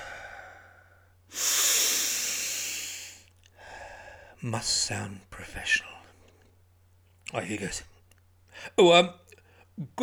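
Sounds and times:
deep breath: 0.0 - 4.4
speech: 4.4 - 6.0, 7.3 - 7.9, 8.6 - 9.2, 9.8 - 10.0.

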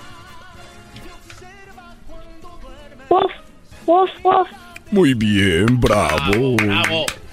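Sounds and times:
speech: 2.0 - 7.2
child imitating a small dog yapping: 3.9 - 4.6.

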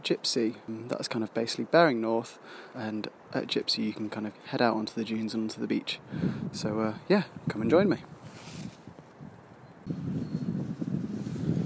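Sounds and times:
speech: 0.0 - 8.1
wind blowing outdoors buffeting the microphone: 5.4 - 11.6.

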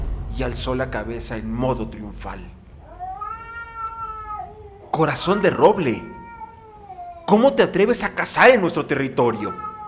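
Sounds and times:
low rumble: 0.0 - 4.9
speech: 0.4 - 2.6, 4.9 - 6.2, 7.3 - 9.7
cat yowling while fighting: 2.9 - 8.6, 9.2 - 9.8.

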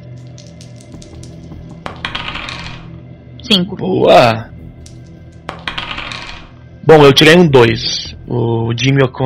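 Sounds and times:
die clattering across a hard tabletop: 0.2 - 2.9, 4.8 - 6.6
speech: 3.5 - 4.5, 6.9 - 9.2.

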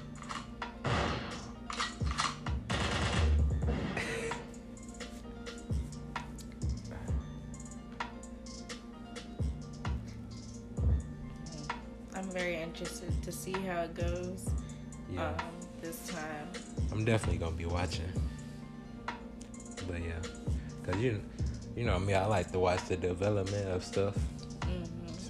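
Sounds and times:
gunshot sound effects: 0.8 - 1.5, 2.7 - 4.1
low steady hum: 3.4 - 25.2
speech: 12.4 - 18.3, 19.9 - 24.3.

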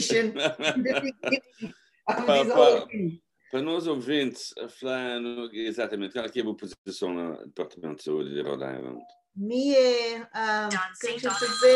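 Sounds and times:
laughter: 0.0 - 1.7
speech: 0.0 - 11.7
phone electronic ringtone melody: 11.0 - 11.7.

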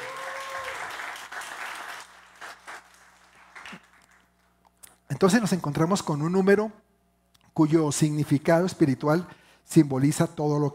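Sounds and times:
audience cheering: 0.0 - 2.9
audience clapping: 0.0 - 4.5
speech: 5.2 - 6.9, 7.6 - 10.7.

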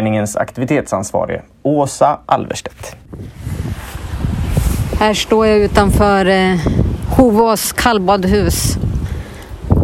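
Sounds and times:
speech: 0.0 - 3.8, 5.0 - 8.9
blustery wind buffeting the microphone: 2.8 - 9.8
waves washing against the shore outside a cold-bath house: 3.2 - 9.8.

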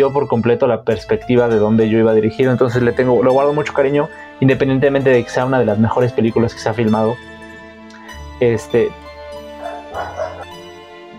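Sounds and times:
speech: 0.0 - 7.3, 8.4 - 9.0
dog barking: 9.4 - 10.5.

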